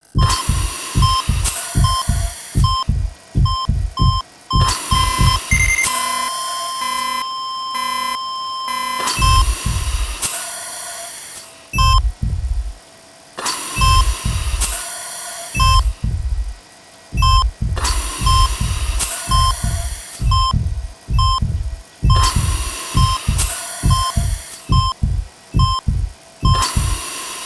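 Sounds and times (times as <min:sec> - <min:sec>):
EKG monitor beeping: 0:00.2 - 0:10.3, 0:11.7 - 0:12.8, 0:13.8 - 0:14.8, 0:15.6 - 0:27.0.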